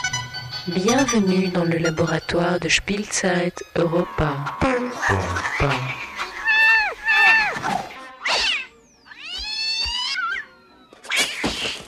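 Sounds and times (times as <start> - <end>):
speech: 0.7 - 6.1
cat yowling and meowing: 6.0 - 7.6, 8.2 - 11.2.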